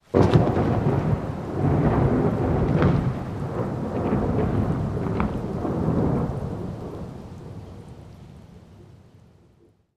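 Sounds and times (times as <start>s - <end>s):
lightning bolt thunder crack: 0.1s - 7.1s.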